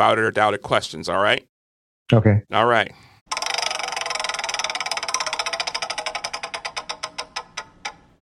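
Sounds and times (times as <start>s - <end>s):
speech: 0.0s - 1.5s, 2.1s - 3.4s
game show prize wheel spinning and ticking: 3.3s - 8.2s.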